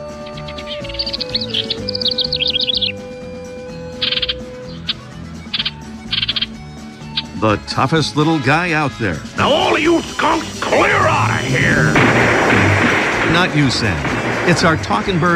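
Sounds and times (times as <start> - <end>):
house wren singing a fast bubbly trilled phrase: 0.0 - 12.0
house wren harsh buzzy scolding chatters: 0.0 - 15.3
speech: 7.4 - 12.7, 13.3 - 15.3.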